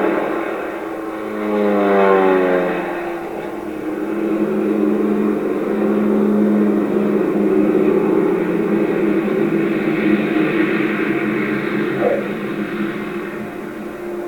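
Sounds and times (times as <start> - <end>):
propeller airplane engines of supply planes droning at Tempelhof: 0.0 - 14.2.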